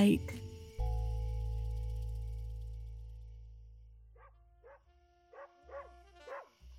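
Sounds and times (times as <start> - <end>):
low steady hum: 0.0 - 5.3
dog barking in sharp high-pitched bursts: 4.2 - 6.6.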